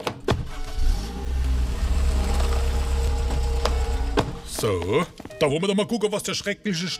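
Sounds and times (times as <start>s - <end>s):
car engine rumbling as it pulls up: 0.5s - 4.5s
speech: 4.6s - 6.9s.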